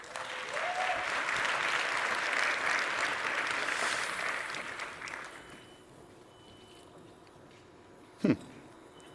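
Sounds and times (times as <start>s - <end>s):
crowd applauding: 0.0s - 5.5s.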